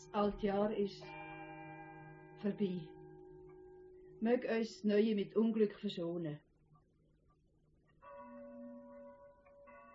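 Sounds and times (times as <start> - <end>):
speech: 0.1 - 1.2, 2.4 - 3.0, 4.2 - 6.4
church bell ringing in the new year: 0.2 - 4.0, 8.0 - 9.9.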